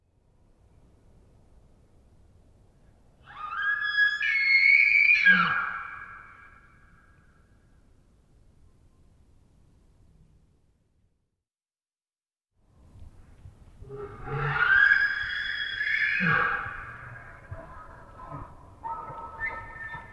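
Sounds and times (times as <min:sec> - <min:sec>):
wild elk screaming around a campsite in the Pacific Northwest: 0:03.2 - 0:06.4, 0:13.8 - 0:17.6.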